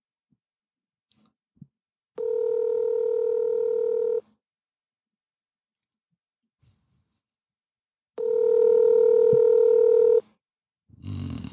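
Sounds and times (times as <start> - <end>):
buzzing ringback tones of an outgoing phone call: 2.2 - 4.2, 8.2 - 10.2.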